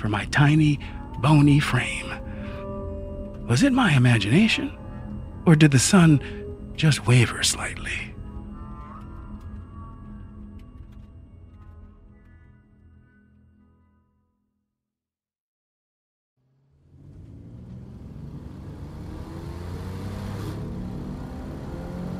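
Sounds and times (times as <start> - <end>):
speech: 0.0 - 2.3, 3.5 - 4.8, 5.4 - 8.1
car engine humming: 0.0 - 11.5, 16.4 - 22.1
Corvette sports car engine revving as the car leaves a bridge: 16.6 - 22.1.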